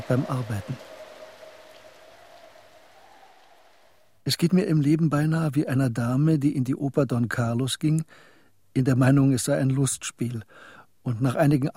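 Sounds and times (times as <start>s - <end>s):
speech: 0.0s - 1.0s, 4.2s - 11.7s
steady rain falling during a storm: 0.0s - 4.1s.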